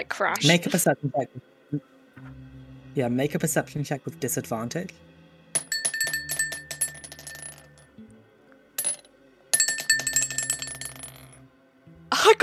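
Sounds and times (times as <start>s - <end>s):
speech: 0.0s - 5.1s
dice rolling on a hard table: 5.6s - 7.8s, 8.8s - 11.4s.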